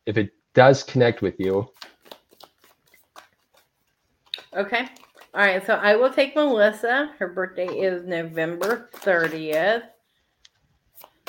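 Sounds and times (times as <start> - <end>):
speech: 0.0 - 1.9, 4.6 - 9.9
new deck of tarot cards being shuffled: 1.4 - 5.7, 8.5 - 9.8, 10.8 - 11.2.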